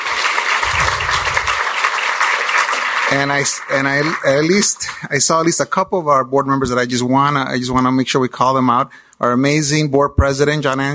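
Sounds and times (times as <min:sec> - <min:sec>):
room full of people applauding: 0:00.0 - 0:04.8
speech: 0:03.2 - 0:10.9.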